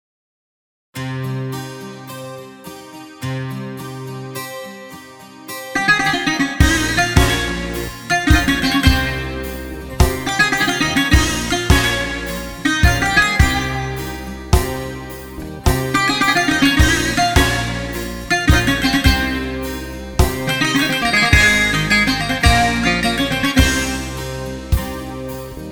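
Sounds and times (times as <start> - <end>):
zeimp style bouzouki intro: 5.6 - 25.7.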